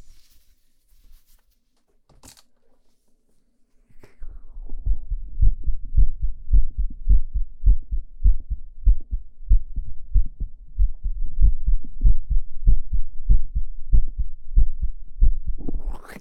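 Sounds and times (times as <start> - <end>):
patient's fast heartbeat through a doctor's stethoscope during a clinic examination: 4.2 - 15.9.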